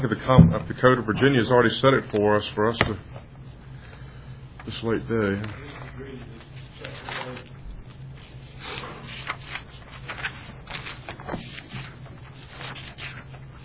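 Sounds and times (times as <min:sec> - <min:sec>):
speech: 0:00.0 - 0:03.2, 0:04.7 - 0:07.5
low electrical hum: 0:00.0 - 0:13.6
pages of a document being flipped: 0:05.4 - 0:13.6.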